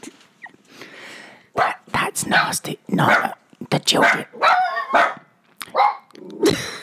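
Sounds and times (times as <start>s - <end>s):
dog barking: 1.6s - 1.8s, 2.4s - 3.4s, 4.0s - 6.1s
speech: 2.2s - 5.1s.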